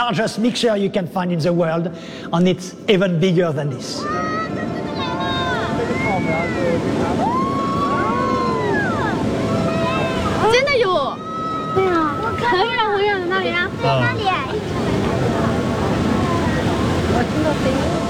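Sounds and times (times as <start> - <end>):
speech: 0.0 - 4.8, 6.4 - 7.4, 12.6 - 15.0, 17.2 - 18.0
crowd shouting excitedly: 4.0 - 17.7
roar of sediment-laden tidal bore surging up a river: 4.1 - 18.0.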